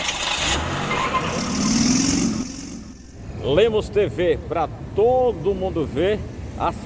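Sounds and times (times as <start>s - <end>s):
street traffic road rumble: 0.0s - 6.8s
car engine revving and passing: 0.3s - 3.4s
speech: 3.4s - 6.8s.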